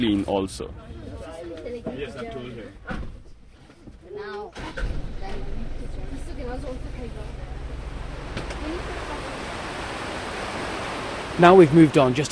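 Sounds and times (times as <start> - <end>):
speech: 0.0 - 0.9, 1.7 - 3.1, 4.2 - 7.6, 11.4 - 12.3
fast-flowing river water rushing: 6.4 - 12.3.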